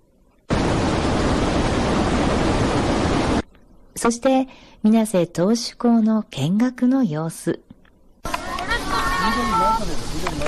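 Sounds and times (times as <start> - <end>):
powerful dam water flow rushing: 0.5 - 3.4, 8.3 - 10.4
speech: 4.0 - 7.6.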